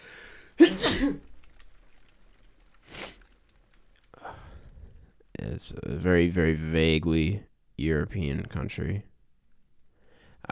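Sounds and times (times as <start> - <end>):
faint rustle: 0.0 - 6.1
loud sneeze: 0.6 - 1.4
speech: 1.0 - 1.3, 5.6 - 9.1.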